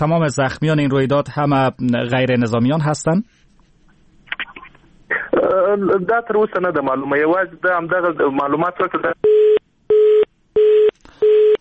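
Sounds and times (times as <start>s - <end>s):
speech: 0.0s - 3.4s, 5.7s - 9.6s
telephone busy tone after a dropped call: 9.2s - 11.5s.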